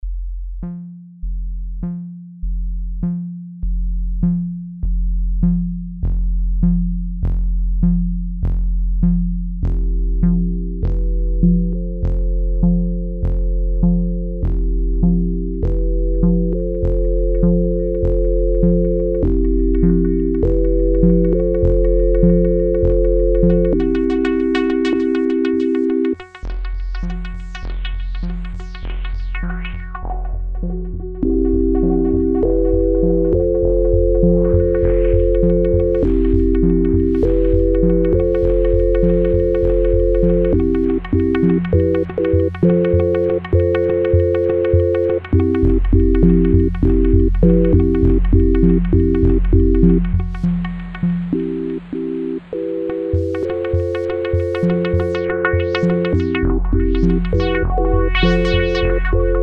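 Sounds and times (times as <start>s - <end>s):
procedural beats: 0.0s - 59.4s.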